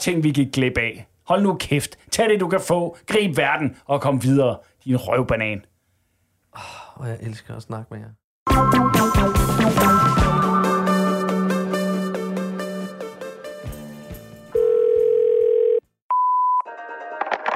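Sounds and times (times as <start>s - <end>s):
speech: 0.0s - 5.7s, 6.6s - 10.0s
musical passage: 8.5s - 13.8s
telephone ringing tone: 14.6s - 15.9s
brief pure beep: 16.1s - 16.7s.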